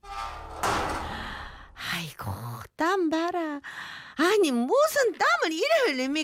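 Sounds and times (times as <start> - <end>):
heavy metal apartment door opening with scraping clank: 0.0 - 1.8
speech: 3.0 - 6.2.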